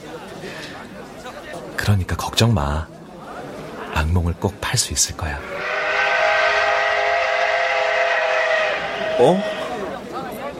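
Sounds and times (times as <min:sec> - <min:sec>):
speech: 0:01.8 - 0:02.9, 0:04.1 - 0:05.7, 0:09.2 - 0:09.5
train whistle blowing: 0:05.4 - 0:10.0.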